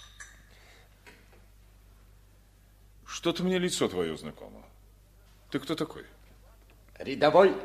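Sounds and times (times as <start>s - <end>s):
champagne glass clinking on a serving tray: 0.0s - 0.6s
speech: 3.2s - 4.8s, 5.5s - 6.2s, 7.0s - 7.6s.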